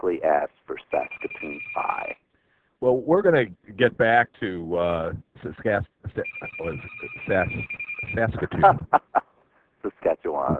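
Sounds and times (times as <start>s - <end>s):
speech: 0.0s - 1.6s, 2.8s - 9.2s
telephone ringing: 1.0s - 2.1s, 6.2s - 8.2s
laughter: 4.2s - 9.2s.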